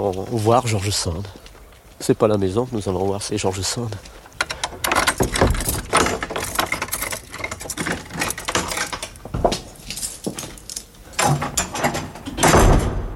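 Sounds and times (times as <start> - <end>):
speech: 0.0 - 1.4, 2.0 - 4.2
keys jangling and clinking: 4.3 - 12.4
lock of a house door at Nohant rattling: 4.3 - 13.1.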